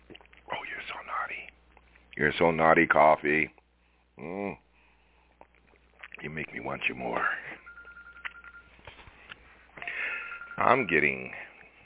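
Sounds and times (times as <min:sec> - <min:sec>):
speech: 0:02.2 - 0:03.6, 0:04.2 - 0:04.6, 0:06.2 - 0:07.4, 0:10.6 - 0:11.4
mobile phone ringing with a steady electronic tone: 0:07.6 - 0:09.0, 0:09.8 - 0:11.5
warbling mobile phone ringtone melody: 0:09.8 - 0:11.1.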